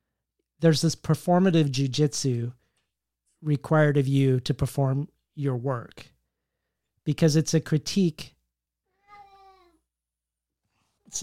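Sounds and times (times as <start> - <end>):
speech: 0.6 - 2.6, 3.4 - 6.1, 7.1 - 8.4
sick cat meowing: 8.9 - 9.8.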